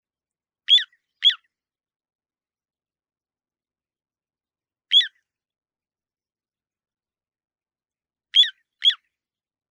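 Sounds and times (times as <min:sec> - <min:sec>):
little ringed plover whistled calls: 0:00.7 - 0:01.6, 0:04.9 - 0:05.3, 0:08.4 - 0:09.2.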